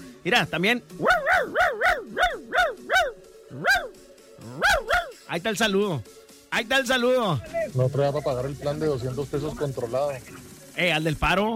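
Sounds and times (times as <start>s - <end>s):
speech: 0.2s - 1.7s, 5.3s - 11.5s
dog barking: 1.0s - 5.2s.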